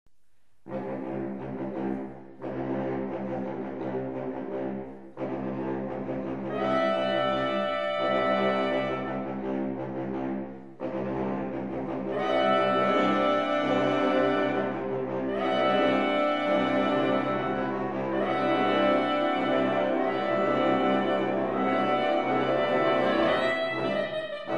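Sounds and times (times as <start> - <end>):
saxophone ensemble: 0.7 - 24.5
soprano saxophone: 6.4 - 9.4, 12.1 - 24.5.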